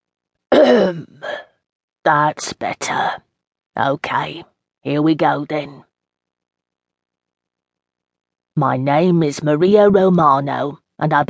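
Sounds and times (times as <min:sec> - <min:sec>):
deep rattling smoker's cough: 0:00.5 - 0:01.2
speech: 0:00.7 - 0:01.4, 0:02.1 - 0:05.9, 0:08.6 - 0:11.2.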